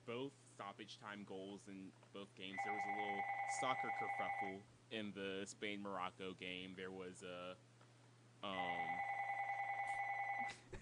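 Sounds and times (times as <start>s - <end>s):
speech: 0.1s - 7.7s, 8.4s - 9.1s
telephone ringing with a steady electronic tone: 2.6s - 4.5s, 8.6s - 10.5s.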